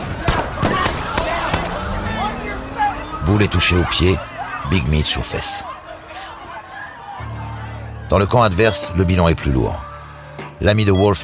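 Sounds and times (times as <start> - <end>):
sharp gunshots in a parking lot: 0.0 - 1.9
speech: 3.3 - 5.7, 8.1 - 9.8, 10.6 - 11.2.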